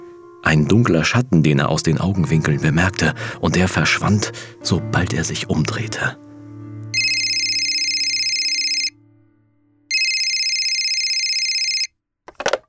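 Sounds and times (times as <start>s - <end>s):
speech: 0.5s - 6.2s
telephone ringing with a buzzing electronic trill: 7.0s - 8.9s, 9.9s - 11.9s.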